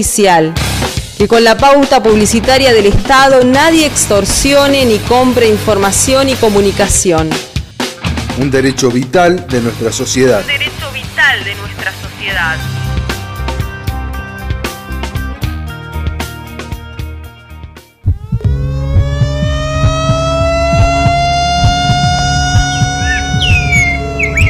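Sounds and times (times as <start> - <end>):
speech: 0.0 - 7.5, 8.4 - 12.8
rhythmic music: 0.6 - 24.4
siren in a fire-prevention campaign spot: 18.0 - 24.4.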